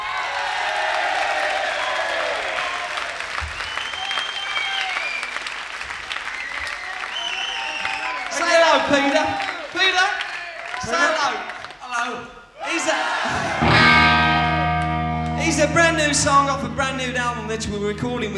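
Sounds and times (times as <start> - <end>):
audience whoops and cheers: 0.0 - 5.4, 6.3 - 9.7, 12.6 - 15.0
audience clapping: 0.0 - 12.0, 13.0 - 18.2
indistinct voices: 12.8 - 18.3
speech: 16.2 - 18.3.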